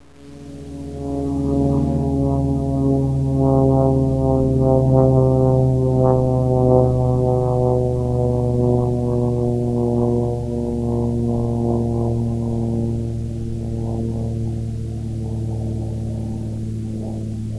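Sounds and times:
planes: 0:00.0 - 0:17.5.

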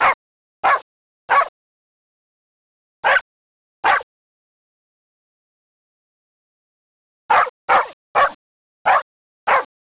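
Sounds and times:
dogs: 0:00.0 - 0:01.5, 0:03.0 - 0:03.2, 0:03.8 - 0:04.1, 0:07.3 - 0:09.7.

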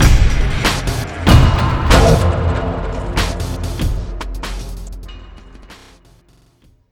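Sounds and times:
outro music: 0:00.0 - 0:06.2.

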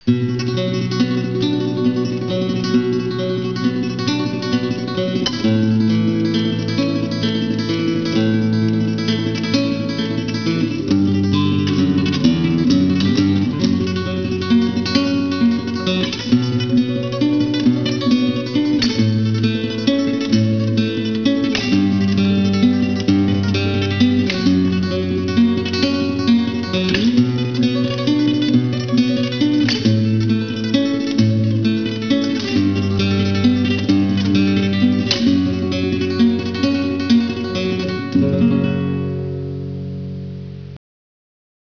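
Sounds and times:
Basque guitar: 0:00.0 - 0:40.8.

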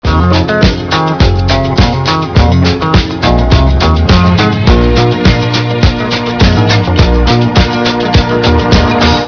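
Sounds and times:
disco music in a hotel: 0:00.0 - 0:09.2.

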